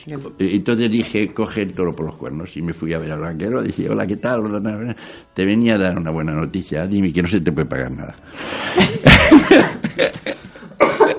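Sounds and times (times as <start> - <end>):
speech: 0.0 - 10.4
laughter: 8.6 - 11.1
person coughing harshly: 8.8 - 9.8, 10.7 - 11.1.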